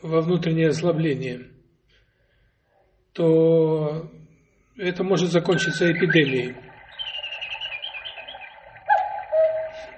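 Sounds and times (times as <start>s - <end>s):
speech: 0.0s - 1.6s, 3.2s - 4.2s, 4.8s - 6.6s
cuckoo clock calling the hour: 5.5s - 9.9s.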